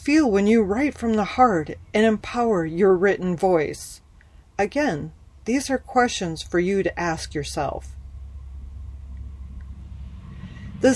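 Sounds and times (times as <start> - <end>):
speech: 0.1 - 4.0, 4.6 - 8.0
big truck driving past: 8.2 - 10.9.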